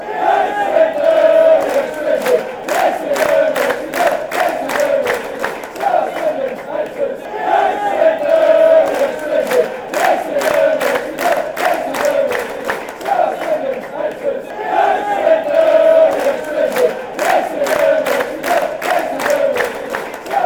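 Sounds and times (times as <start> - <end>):
football fans chanting: 0.0 - 20.4.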